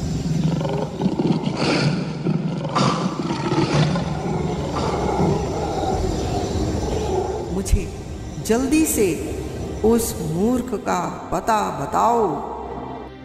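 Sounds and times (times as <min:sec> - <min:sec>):
lion roaring: 0:00.0 - 0:07.6
speech: 0:08.5 - 0:12.5.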